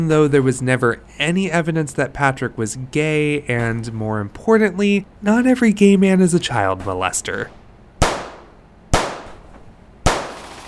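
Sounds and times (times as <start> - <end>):
speech: 0.0 - 7.6
gunshots: 8.0 - 10.6.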